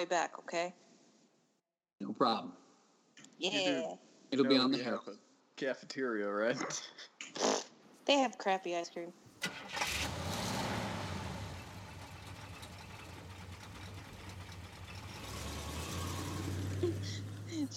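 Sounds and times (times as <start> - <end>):
speech: 0.0 - 0.8, 2.0 - 2.6, 3.4 - 7.5, 8.1 - 9.8
car engine starting: 9.3 - 17.7
laughter: 16.8 - 17.7.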